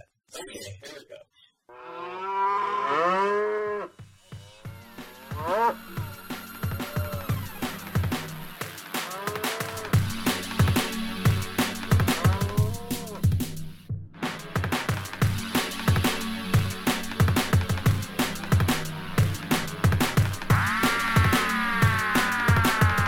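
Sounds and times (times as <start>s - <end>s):
speech: 0.4s - 2.3s
cattle mooing mixed into a DJ mix: 1.7s - 4.0s, 5.1s - 6.2s, 9.1s - 10.0s
steady electronic beat of a DJ mix: 4.0s - 23.0s.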